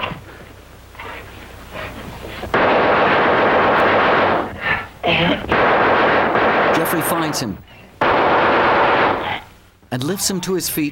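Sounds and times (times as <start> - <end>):
loud gunfire barrage: 2.5 - 4.8, 5.4 - 9.5
speech: 7.2 - 7.8, 9.9 - 10.9.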